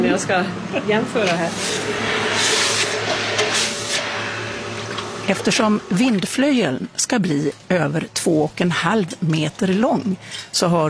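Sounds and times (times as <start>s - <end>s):
speech: 0.2s - 2.6s, 5.3s - 10.8s
hot metal hissing when quenched in a bucket of water: 1.4s - 5.8s.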